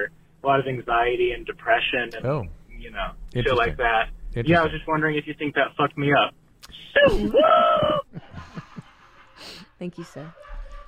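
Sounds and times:
speech: 0:00.0 - 0:08.0, 0:09.4 - 0:10.4
laughter: 0:06.8 - 0:09.2
male caller letting out a whooping rebel yell: 0:07.0 - 0:08.1.

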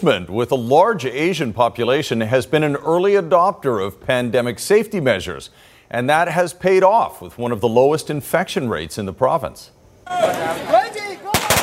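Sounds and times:
speech: 0:00.0 - 0:10.8
crowd chatter and voices: 0:10.1 - 0:11.3
firecrackers going off in sharp bangs: 0:10.2 - 0:11.6.

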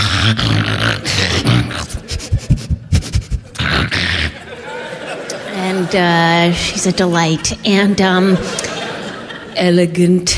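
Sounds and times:
person imitating a dog with growls, pants and snarls: 0:00.0 - 0:04.5
speech: 0:00.3 - 0:02.0, 0:05.9 - 0:08.6, 0:09.6 - 0:10.3
laughter: 0:00.7 - 0:09.8.

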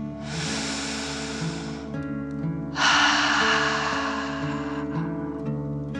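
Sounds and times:
deep breathing in through the nose and out through the mouth: 0:00.0 - 0:05.8
soft sustained musical bed: 0:00.0 - 0:05.9.

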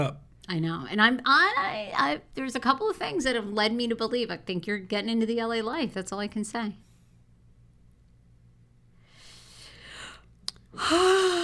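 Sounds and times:
speech: 0:00.0 - 0:06.9, 0:10.8 - 0:11.4
breathy human yawn: 0:10.8 - 0:11.4.

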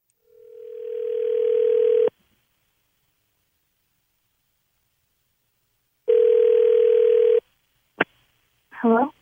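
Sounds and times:
phone line ringback tones: 0:00.2 - 0:02.1, 0:06.1 - 0:07.4.

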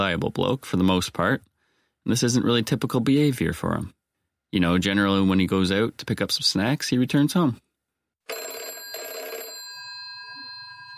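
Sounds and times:
speech: 0:00.0 - 0:07.6
old-fashioned telephone bell ringing loudly: 0:08.3 - 0:10.9.

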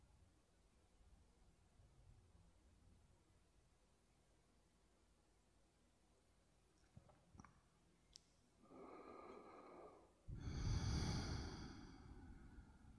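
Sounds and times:
slow deep breathing: 0:08.6 - 0:12.9.

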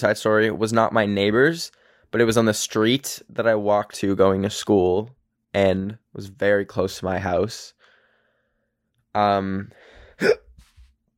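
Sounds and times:
speech: 0:00.0 - 0:07.8, 0:09.2 - 0:10.4
sharp fairly loud hiccup: 0:10.2 - 0:10.5.

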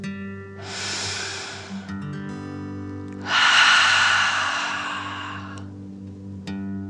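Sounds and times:
deep breath in through nose, out through mouth: 0:00.6 - 0:05.8
soft steady musical drone: 0:00.6 - 0:06.6.

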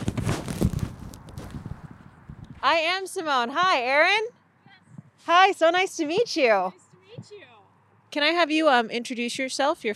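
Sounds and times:
bag rustling while putting on gloves: 0:00.0 - 0:01.7
speech: 0:02.6 - 0:04.4, 0:05.3 - 0:07.4, 0:08.1 - 0:09.9.

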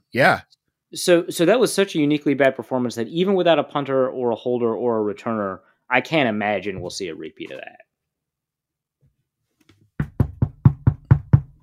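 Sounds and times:
speech: 0:00.1 - 0:07.8
knocking on a wooden desk: 0:10.0 - 0:11.6.

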